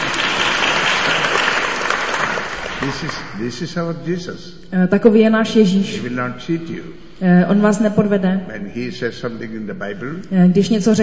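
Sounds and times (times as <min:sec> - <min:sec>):
audience clapping: 0:00.0 - 0:03.6
speech: 0:02.8 - 0:11.0.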